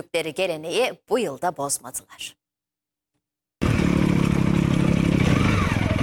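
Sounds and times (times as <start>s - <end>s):
speech: 0.0s - 2.4s
off-road motorcycles climbing a steep rocky mountain trail in the Amanos Mountains: 3.6s - 6.0s.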